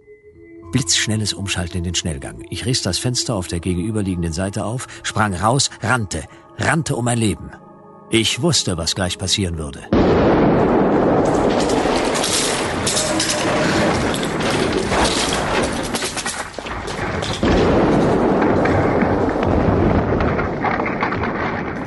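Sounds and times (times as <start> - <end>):
speech: 0.7 - 12.5
loud roaring bomb blast with crackling debris: 9.9 - 21.8.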